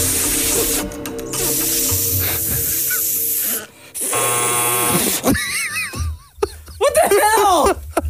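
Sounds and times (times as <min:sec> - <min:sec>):
air hissing out of a balloon being blown up: 0:00.0 - 0:05.4
laughter: 0:04.9 - 0:08.0.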